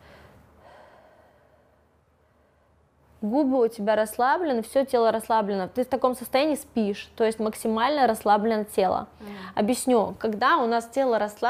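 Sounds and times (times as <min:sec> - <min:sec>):
single long airy relaxed breath: 0:00.0 - 0:03.1
speech: 0:03.2 - 0:11.4.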